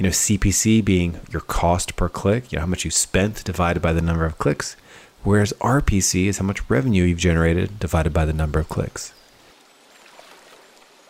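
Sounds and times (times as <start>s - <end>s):
speech: 0.0s - 9.2s
flowing river water: 9.2s - 11.0s.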